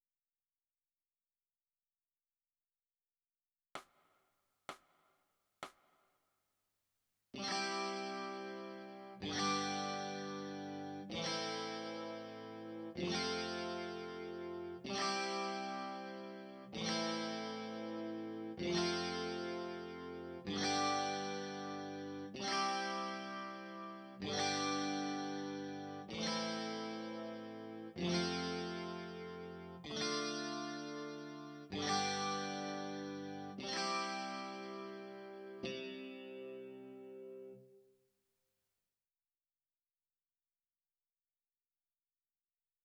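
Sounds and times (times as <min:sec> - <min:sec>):
electric guitar: 0:07.4 - 0:37.8.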